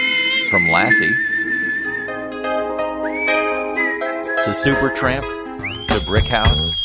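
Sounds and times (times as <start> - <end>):
whistled melody in a pop song: 0.4 - 6.8
speech: 0.5 - 1.4, 4.5 - 5.4, 6.0 - 6.8
pop song backing instruments: 1.3 - 6.8
regular percussive beats: 1.8 - 6.8.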